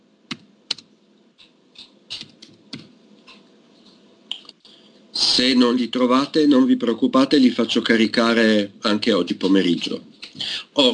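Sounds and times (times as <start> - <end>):
typing on a computer keyboard: 0.3 - 3.4
speech: 5.4 - 10.1, 10.8 - 10.9.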